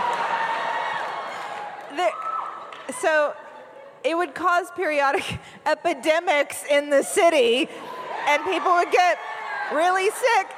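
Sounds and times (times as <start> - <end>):
live audience cheering and shouting: 0.0 - 3.3, 7.8 - 10.5
speech: 2.0 - 2.3, 2.9 - 3.4, 4.0 - 10.5.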